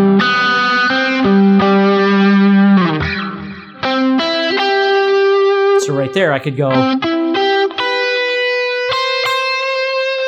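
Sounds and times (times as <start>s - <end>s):
distorted electric guitar arpeggio with effects: 0.0s - 10.2s
speech: 6.1s - 7.1s.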